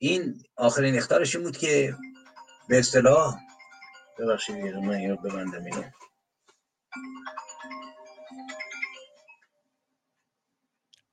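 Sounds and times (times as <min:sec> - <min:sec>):
speech: 0:00.0 - 0:02.1, 0:02.7 - 0:03.5, 0:04.2 - 0:06.1
phone ringtone playing a bright electronic melody: 0:01.5 - 0:06.1, 0:06.9 - 0:09.6.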